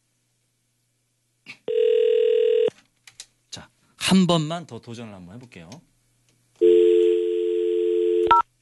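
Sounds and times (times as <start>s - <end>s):
dial tone on an ordinary landline phone at a radio station: 1.7s - 2.7s, 6.6s - 8.4s
speech: 4.1s - 5.9s.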